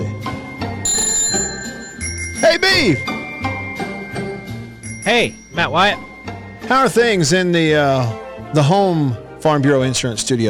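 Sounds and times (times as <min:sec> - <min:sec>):
bicycle bell ringing: 0:00.8 - 0:07.4
speech: 0:02.4 - 0:03.2, 0:05.1 - 0:10.4.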